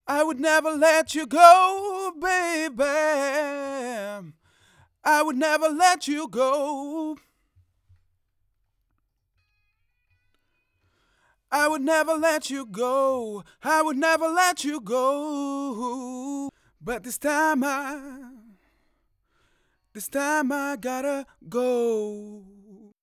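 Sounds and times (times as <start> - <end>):
lead vocals: 0.0 - 7.3, 11.5 - 18.7, 20.0 - 23.0.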